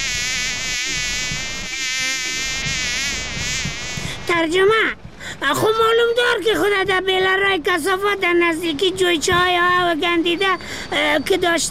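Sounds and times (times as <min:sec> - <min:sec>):
fly buzzing: 0:00.0 - 0:04.4
speech: 0:04.3 - 0:11.6.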